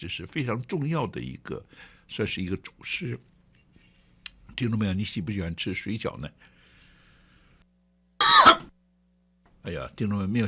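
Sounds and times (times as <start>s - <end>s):
speech: 0.0s - 3.3s, 4.6s - 6.5s, 9.7s - 10.4s
person coughing near an open microphone: 8.2s - 8.7s.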